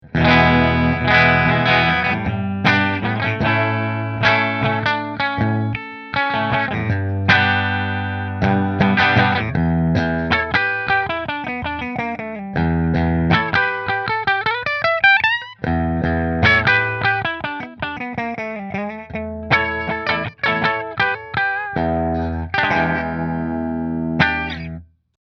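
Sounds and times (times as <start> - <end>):
guitar with flame bridge: 0.0 - 24.8.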